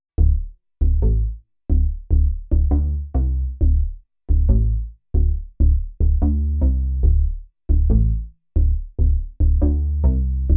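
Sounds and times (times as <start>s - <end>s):
thick bass: 0.2s - 10.5s.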